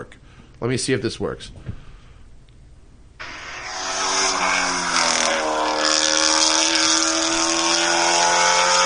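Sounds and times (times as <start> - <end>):
speech: 0.0 - 1.7
car engine roaring past with raspy race-car-like exhaust, played from an iPhone video: 3.2 - 8.8.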